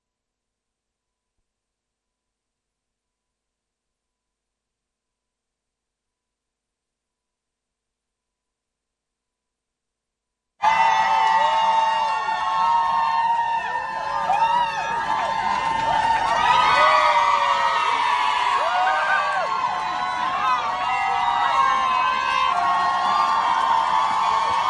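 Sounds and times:
crowd cheering and crying with joy at a street demonstration: 0:10.6 - 0:24.6.

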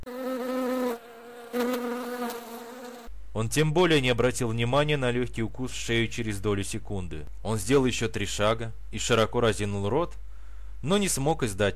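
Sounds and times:
flying insect buzzing: 0:00.0 - 0:03.1
speech: 0:03.4 - 0:10.2, 0:10.8 - 0:11.7.

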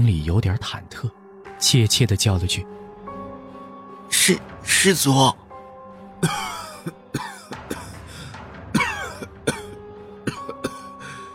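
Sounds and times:
speech: 0:00.0 - 0:02.8, 0:04.2 - 0:05.4, 0:06.2 - 0:07.3
old man coughing uncontrollably: 0:06.2 - 0:08.1, 0:08.7 - 0:11.0
old man's short strained breaths: 0:07.8 - 0:08.6, 0:10.8 - 0:11.3.

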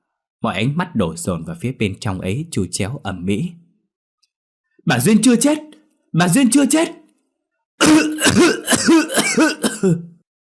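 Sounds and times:
speech: 0:00.4 - 0:03.6, 0:04.8 - 0:07.0, 0:07.8 - 0:10.1
older woman coughing harshly in a coffin: 0:07.8 - 0:10.2.

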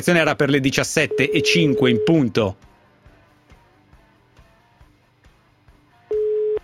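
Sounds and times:
speech: 0:00.0 - 0:02.7
telephone busy-signal beep on an unanswered call: 0:01.1 - 0:02.3, 0:06.1 - 0:06.6.

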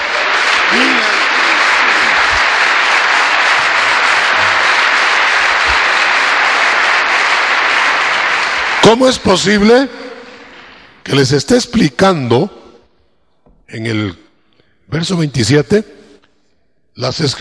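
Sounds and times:
congregation applauding at a church teaching: 0:00.0 - 0:10.8
speech: 0:08.8 - 0:10.0, 0:11.1 - 0:12.6, 0:13.7 - 0:14.2, 0:14.9 - 0:16.0, 0:17.0 - 0:17.3.

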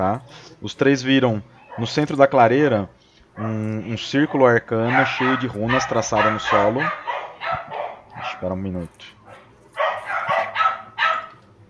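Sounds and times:
speech: 0:00.0 - 0:09.2
dog barking: 0:01.6 - 0:02.1, 0:03.4 - 0:08.6, 0:09.3 - 0:11.4.

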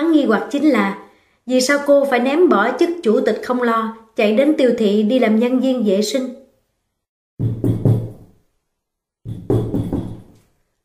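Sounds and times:
speech: 0:00.2 - 0:06.4
colleague knocking on an office door: 0:07.4 - 0:08.4, 0:09.2 - 0:10.4.

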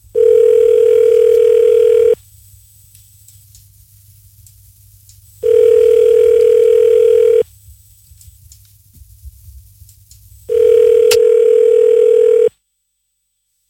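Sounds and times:
telephone ringback tone while calling a random number: 0:00.2 - 0:02.2, 0:05.4 - 0:07.4, 0:10.5 - 0:12.5.

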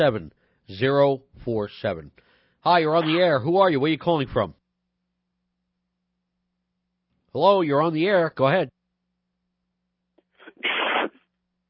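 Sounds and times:
speech: 0:00.0 - 0:04.6, 0:07.3 - 0:08.8
breathy intake of a caller on a telephone line: 0:10.3 - 0:11.3
sneeze from a caller on a telephone line: 0:10.4 - 0:11.3.

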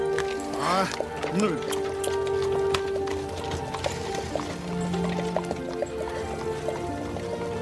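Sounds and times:
hooves of a horse pulling a cart clip-clopping along a road: 0:00.0 - 0:07.6
speech: 0:00.6 - 0:01.9.

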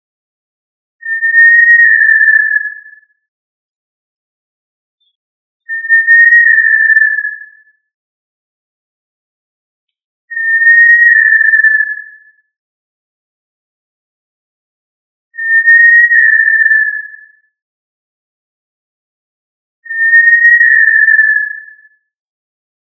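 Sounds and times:
tinamou whistling: 0:01.0 - 0:02.7, 0:05.7 - 0:07.4, 0:10.3 - 0:12.1, 0:15.4 - 0:17.1, 0:19.8 - 0:21.6.

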